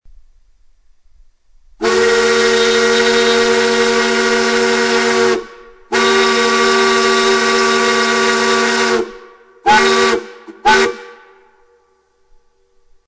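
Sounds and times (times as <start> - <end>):
Powell 6-inch three-chime steam whistles at a candy factory: 1.8 - 11.7.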